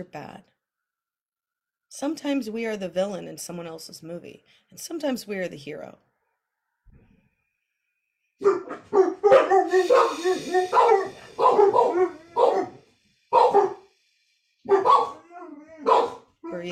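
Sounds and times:
speech: 0:00.0 - 0:00.6, 0:01.9 - 0:06.1, 0:09.6 - 0:12.7, 0:14.6 - 0:15.2, 0:15.8 - 0:16.6
dogs barking: 0:08.4 - 0:13.9, 0:14.7 - 0:16.6.

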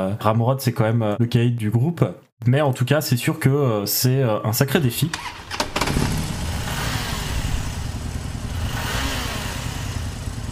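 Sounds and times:
speech: 0:00.0 - 0:06.2
two motorcycle engines idling and revving: 0:05.2 - 0:10.4.

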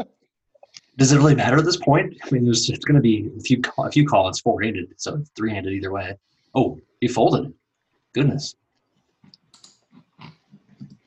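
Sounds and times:
speech: 0:01.0 - 0:07.6, 0:08.2 - 0:08.6
computer mouse clicking during a poker game: 0:09.3 - 0:11.0.

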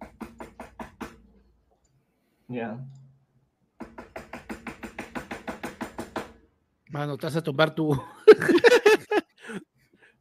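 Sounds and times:
loud knocking on a door: 0:00.0 - 0:01.2, 0:03.8 - 0:06.4
speech: 0:02.5 - 0:03.0, 0:06.9 - 0:09.6
laughter: 0:07.9 - 0:09.6.

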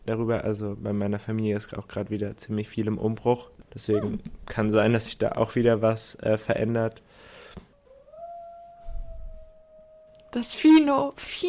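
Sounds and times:
speech: 0:00.1 - 0:07.3, 0:10.3 - 0:11.4
dog howling: 0:07.7 - 0:10.6.

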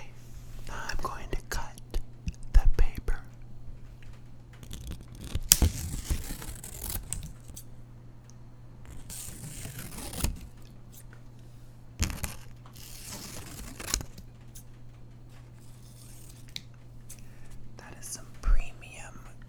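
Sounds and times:
faint steady hum: 0:00.0 - 0:19.4
scissors cutting through paper: 0:04.6 - 0:07.7, 0:08.9 - 0:11.1, 0:12.0 - 0:14.7, 0:15.6 - 0:16.7.

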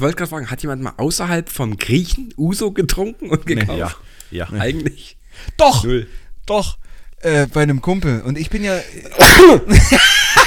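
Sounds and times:
speech: 0:00.0 - 0:10.4
loud sneeze onto a microphone: 0:09.2 - 0:09.7
laughter: 0:09.7 - 0:10.4.

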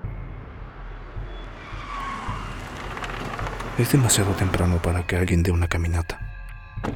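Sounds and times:
car engine rumbling while pulling in to park along a trail: 0:00.0 - 0:06.1
car tires scraping: 0:00.5 - 0:05.2
speech: 0:03.8 - 0:06.2.

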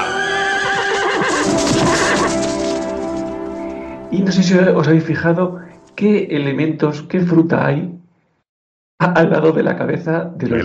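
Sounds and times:
horse neighing with a drawn-out whinny: 0:00.0 - 0:04.1
speech: 0:04.1 - 0:08.0, 0:09.0 - 0:10.6.

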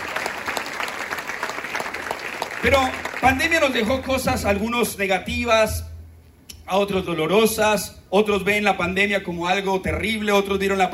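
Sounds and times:
audience applause in an auditorium: 0:00.0 - 0:03.8
speech: 0:02.6 - 0:05.9, 0:06.7 - 0:10.9.

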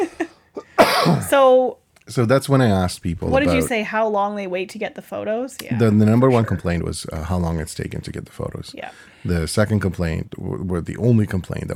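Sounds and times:
person coughing fit: 0:00.6 - 0:01.4
speech: 0:01.1 - 0:11.7.

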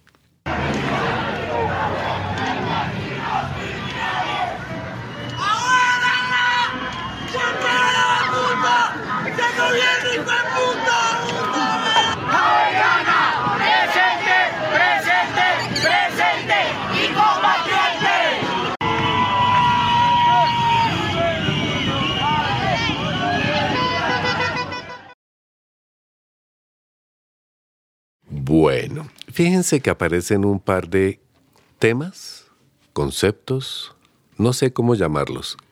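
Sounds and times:
large protest march crowd chanting and shouting: 0:00.5 - 0:25.1
speech: 0:29.4 - 0:31.2, 0:31.8 - 0:32.4, 0:33.0 - 0:35.6.

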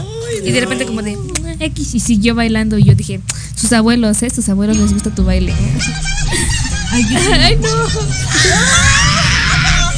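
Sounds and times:
low hum: 0:00.0 - 0:09.9
speech: 0:00.3 - 0:09.0
laughter: 0:05.6 - 0:09.9
person screaming: 0:08.3 - 0:09.9.

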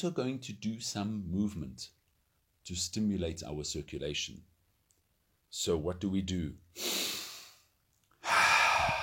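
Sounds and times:
speech: 0:00.0 - 0:02.0, 0:02.7 - 0:04.5, 0:05.5 - 0:07.2
deep breathing during a morning breathing exercise: 0:06.8 - 0:09.0.

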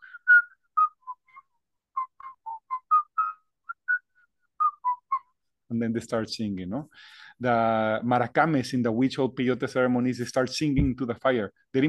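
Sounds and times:
person whistling a healing song in an ayahuasca session: 0:00.0 - 0:05.4
speech: 0:05.7 - 0:11.8.

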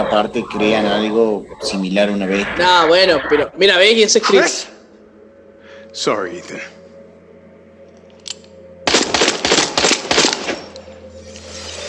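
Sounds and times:
speech: 0:00.0 - 0:04.7, 0:06.0 - 0:06.8
low steady hum of game background: 0:00.0 - 0:11.8
video game handgun gunshots: 0:08.9 - 0:10.7.

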